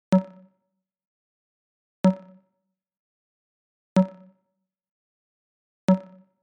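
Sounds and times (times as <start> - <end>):
808 percussion: 0.2 - 0.4, 2.1 - 2.4, 4.0 - 4.3, 5.9 - 6.2.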